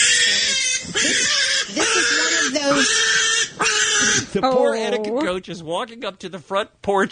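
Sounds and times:
small pig screaming while held off the ground on a house's front porch: 0.0s - 4.3s
speech: 4.3s - 7.1s.

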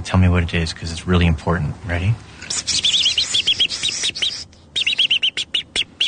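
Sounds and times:
speech: 0.0s - 2.8s
robin alarm call: 2.5s - 6.0s.

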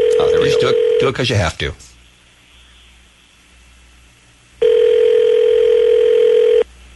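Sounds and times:
electronic ring tone from a telephone line: 0.0s - 1.2s, 4.6s - 6.7s
speech: 0.2s - 1.9s.

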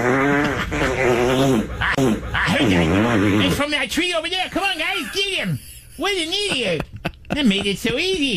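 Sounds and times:
loud drawn-out buzzy fart: 0.0s - 3.7s
speech: 3.6s - 6.8s, 7.4s - 8.3s.

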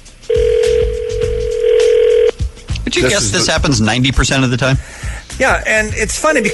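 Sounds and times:
outgoing phone call electronic ringback tone: 0.3s - 2.4s
speech: 3.0s - 6.5s.

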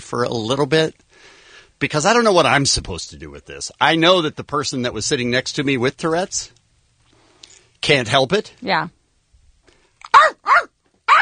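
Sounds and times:
speech: 0.0s - 6.6s, 7.8s - 9.0s
person imitating dog barks with yelps: 10.1s - 11.2s.

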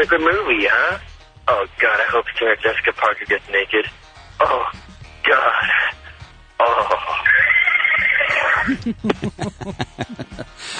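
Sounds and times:
speech: 0.0s - 6.0s, 6.6s - 7.5s, 8.6s - 10.7s
horse neighing: 7.2s - 8.8s
laughter: 7.4s - 10.7s.

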